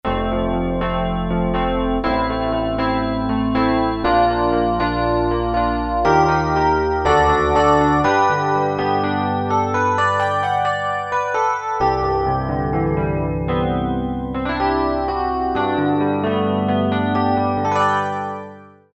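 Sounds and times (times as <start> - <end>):
Korg DSS-1 electric piano: 0.0 - 18.9.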